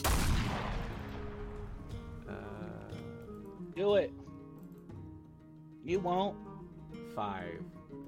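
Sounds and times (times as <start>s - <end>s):
heavy cannon blast: 0.0s - 2.2s
speech: 3.8s - 4.2s, 5.8s - 6.5s, 7.2s - 8.0s.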